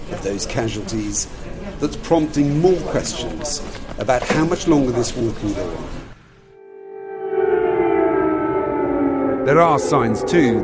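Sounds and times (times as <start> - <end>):
speech: 0.2 - 6.0, 9.5 - 10.6
air raid siren wailing in wartime Dnipro: 6.4 - 10.6.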